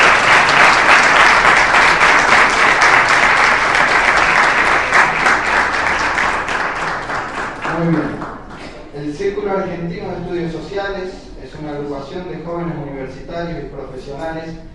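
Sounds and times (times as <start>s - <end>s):
audience applause at a lecture event: 0.0s - 8.6s
speech: 9.5s - 14.7s.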